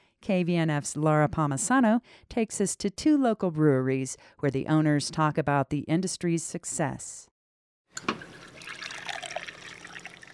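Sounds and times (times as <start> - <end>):
speech: 0.2 - 7.3
craft beer pouring into a glass from a tap: 8.0 - 10.3.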